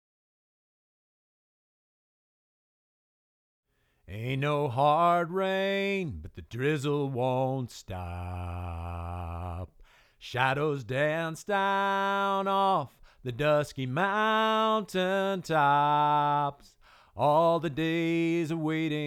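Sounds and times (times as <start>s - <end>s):
person singing lead vocal: 4.1s - 19.0s.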